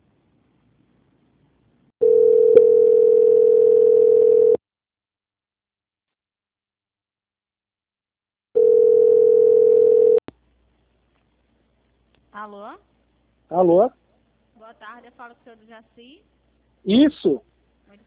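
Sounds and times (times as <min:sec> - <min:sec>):
telephone tones while a bank call is transferred to another line: 0:02.0 - 0:04.6, 0:08.6 - 0:10.2
speech: 0:12.4 - 0:12.9, 0:13.5 - 0:14.0, 0:14.7 - 0:18.0.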